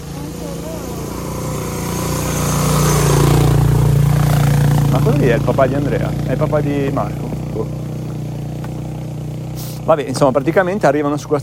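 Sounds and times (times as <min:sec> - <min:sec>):
motorcycle engines rumbling: 0:00.0 - 0:11.4
speech: 0:05.2 - 0:07.9, 0:09.8 - 0:11.4.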